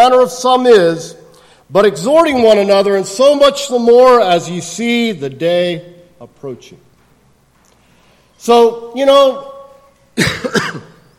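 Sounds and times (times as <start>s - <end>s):
speech: 0.0s - 6.8s, 8.4s - 9.5s, 10.2s - 10.9s
person preaching a church sermon coughing: 10.2s - 11.1s.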